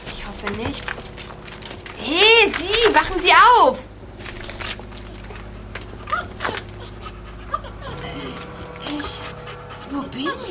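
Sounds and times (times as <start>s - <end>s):
low hum: 0.0s - 10.4s
speech: 0.3s - 1.1s, 2.0s - 3.9s, 9.9s - 10.4s
dog panting: 5.2s - 10.4s
dog whimpering: 5.9s - 10.4s.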